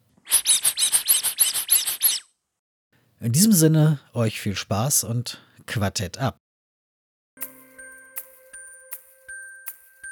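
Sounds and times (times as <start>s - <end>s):
rubber duck from a collection squeaking: 0.3s - 2.3s
speech: 3.2s - 6.4s.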